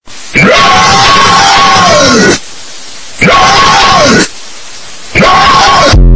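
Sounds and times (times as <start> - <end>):
loud shout: 0.4 - 2.4, 3.2 - 4.3, 5.2 - 6.0.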